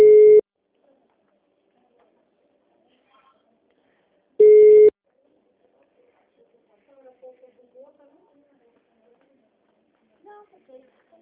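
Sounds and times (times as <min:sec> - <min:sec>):
short steady telephone beeps of a call not going through: 0:00.0 - 0:00.4, 0:04.4 - 0:04.9.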